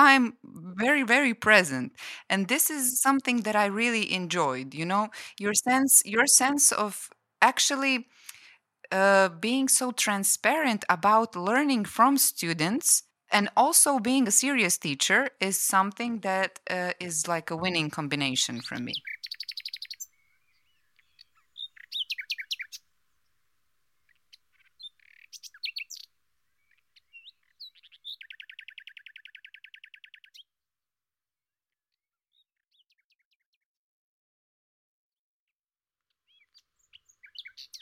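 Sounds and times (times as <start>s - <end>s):
speech: 0.0s - 8.2s, 8.9s - 19.2s
birds chirping and singing: 17.5s - 22.9s, 24.0s - 30.4s, 32.3s - 33.4s, 36.2s - 37.8s.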